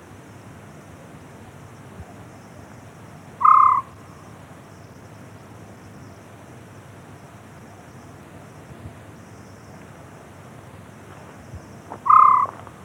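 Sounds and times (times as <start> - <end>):
White-faced scops owl hooting: 3.4 - 4.0, 12.0 - 12.7.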